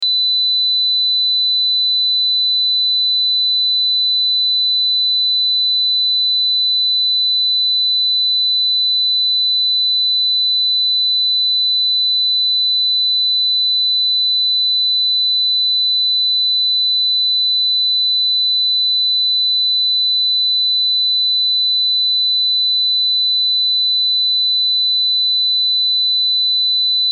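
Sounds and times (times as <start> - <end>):
4 kHz sine wave test tone: 0.0 - 27.1.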